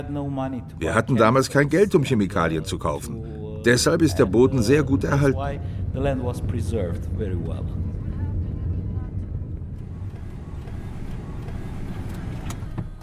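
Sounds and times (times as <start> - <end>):
speech: 0.0 - 7.8
voices: 0.0 - 9.7
car road noise: 0.8 - 13.0
car engine rumble while driving and parking: 1.4 - 13.0.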